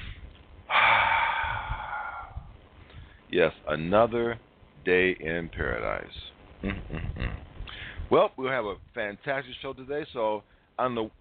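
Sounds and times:
deep breath: 0.7 - 3.3, 7.6 - 8.1
speech: 3.3 - 11.1.

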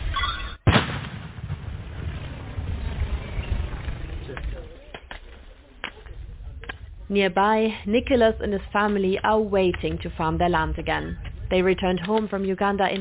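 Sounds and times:
controlled detonation of unexploded cluster ammunition: 0.6 - 4.7
long low rumble of detonation: 1.2 - 11.9
speech: 7.1 - 13.0.

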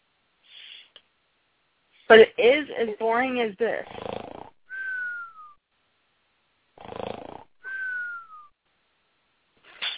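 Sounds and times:
speech: 2.1 - 4.1
cartoonish snoring sound effect: 3.8 - 4.9, 6.8 - 7.9.

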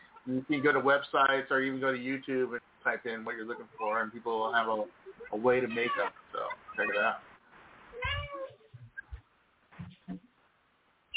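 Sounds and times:
speech: 0.2 - 7.3
cat meowing through a door: 5.2 - 7.2, 8.0 - 8.7.

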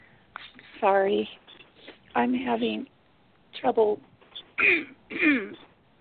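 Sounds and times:
speech: 0.8 - 1.4, 2.2 - 2.9, 3.6 - 5.7
person clearing throat with rough, husky bursts: 4.6 - 5.6.

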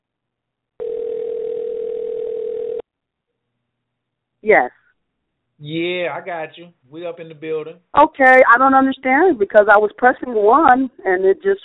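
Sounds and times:
ringback tone over a phone line: 0.8 - 2.8
speech: 4.4 - 4.8, 5.6 - 11.6.

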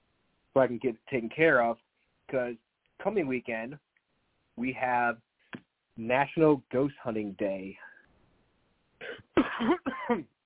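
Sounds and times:
speech: 0.6 - 3.8, 4.6 - 5.3, 6.0 - 7.9, 9.1 - 10.4
raspy throaty coughs: 9.0 - 10.3.

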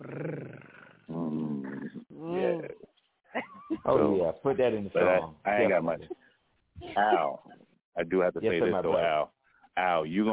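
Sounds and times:
voice imitating a cat's purr: 0.0 - 2.9
speech: 3.9 - 6.2, 7.0 - 10.3.

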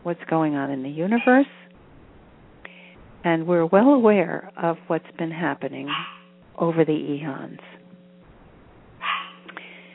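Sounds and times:
speech: 0.0 - 1.7, 3.2 - 7.8
quiet hum: 0.0 - 9.9
small dog barking: 5.9 - 6.3, 9.0 - 9.5.

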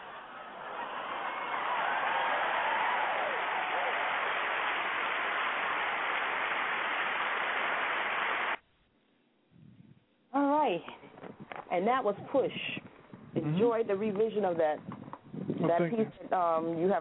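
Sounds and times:
hand clapping: 1.3 - 8.6
speech: 10.8 - 12.8, 13.5 - 14.9, 15.6 - 16.9.

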